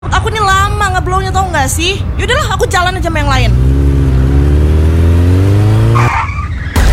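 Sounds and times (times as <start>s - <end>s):
motorcycle engine droning: 0.1s - 6.9s
speech: 1.0s - 3.9s
motorcycle ridden badly skidding and crashing: 2.0s - 6.9s.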